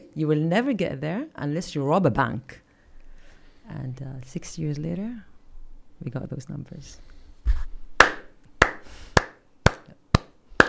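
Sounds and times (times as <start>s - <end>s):
speech: 0.2s - 2.6s, 3.7s - 5.3s, 6.0s - 7.6s
single person clapping hands: 8.0s - 10.6s.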